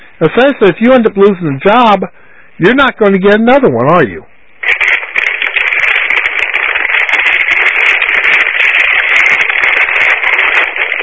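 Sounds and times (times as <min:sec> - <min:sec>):
speech: 0:00.2 - 0:04.3
loud continuous crinkling and crackling: 0:04.5 - 0:11.0.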